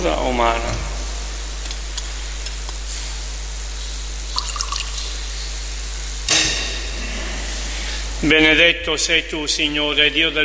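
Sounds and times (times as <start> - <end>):
speech: 0.0 - 0.9, 8.2 - 10.4
steady low hum: 0.0 - 10.4
water poured into wine in a chalice during Mass: 4.3 - 5.3.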